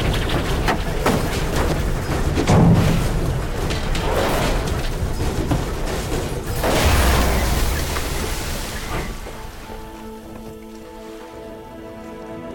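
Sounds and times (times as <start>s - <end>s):
aircraft crashing into a tree: 0.0s - 9.9s
heavy booming thuds: 0.0s - 10.1s
rumbling and crackling debris: 0.0s - 11.7s.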